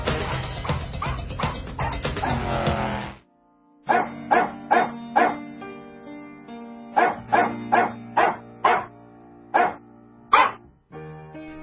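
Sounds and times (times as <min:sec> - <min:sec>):
backing music with bassline: 0:00.0 - 0:03.2
dog barks arranged into a melody: 0:00.6 - 0:02.4, 0:03.9 - 0:05.6, 0:06.9 - 0:10.7.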